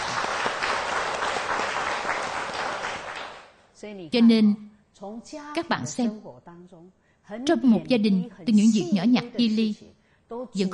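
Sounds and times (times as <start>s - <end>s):
class of students clapping in encouragement during a lesson: 0.0s - 3.6s
speech: 3.8s - 10.7s.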